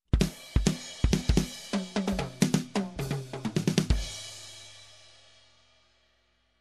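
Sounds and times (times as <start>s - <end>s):
jazzy drum fill: 0.1s - 4.5s.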